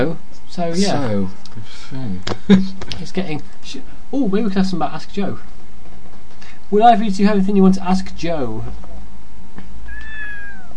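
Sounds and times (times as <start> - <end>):
speech: 0.0 - 5.6, 6.7 - 8.9
steady hiss: 0.0 - 10.7
cat meowing: 9.8 - 10.7.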